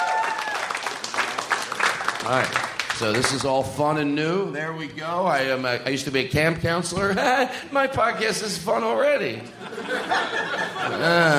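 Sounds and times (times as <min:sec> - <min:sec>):
audience applauding: 0:00.0 - 0:03.6
speech: 0:02.2 - 0:11.3
laughter: 0:07.0 - 0:08.6, 0:09.4 - 0:11.3.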